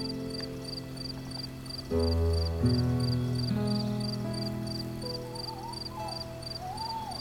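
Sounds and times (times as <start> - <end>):
chorus of crickets chirping at night on a farm in Devon: 0.0 - 7.2
owl hooting in an old oak tree on a farm in Devon: 5.1 - 7.2.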